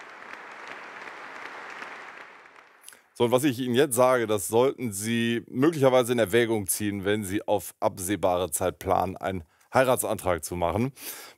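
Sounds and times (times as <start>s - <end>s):
full audience applauding in a hall: 0.0s - 3.2s
speech: 3.2s - 11.3s.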